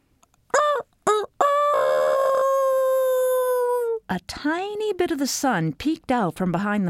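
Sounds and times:
rooster crowing: 0.6s - 4.0s
speech: 4.2s - 6.8s.

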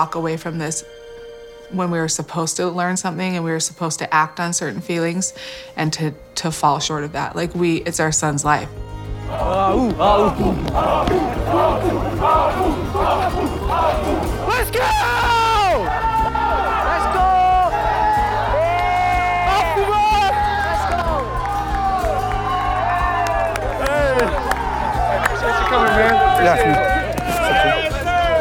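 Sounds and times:
speech: 0.0s - 1.1s, 1.7s - 15.3s
team players yelling and cheering a name: 9.0s - 28.3s.

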